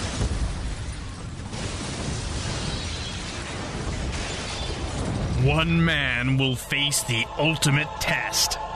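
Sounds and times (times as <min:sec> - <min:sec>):
roaring blasts and deep booming explosions: 0:00.0 - 0:06.3
crackling debris: 0:00.0 - 0:06.5
speech: 0:05.4 - 0:08.6.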